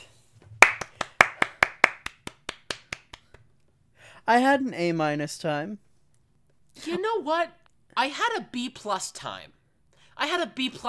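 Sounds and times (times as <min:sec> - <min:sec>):
single person clapping: 0:00.6 - 0:03.5
speech: 0:04.3 - 0:05.8, 0:06.8 - 0:09.6, 0:10.2 - 0:10.8.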